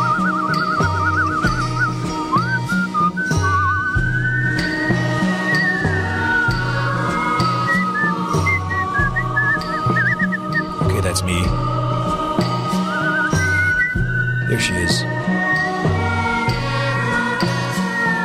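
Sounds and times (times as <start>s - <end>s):
woman whistling a melody with vibrato: 0.0s - 10.8s, 12.7s - 15.9s
rhythmic recorded music with bass and percussion: 0.0s - 18.2s.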